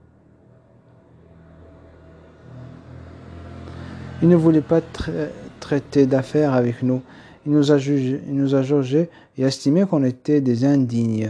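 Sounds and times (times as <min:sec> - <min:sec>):
car engine revving and pulling away: 0:00.4 - 0:08.6
speech: 0:04.2 - 0:11.2.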